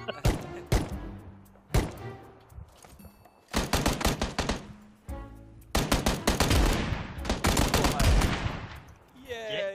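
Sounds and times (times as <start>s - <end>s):
rapid gunfire bursts in a shootout: 3.6s - 4.6s, 5.8s - 8.5s.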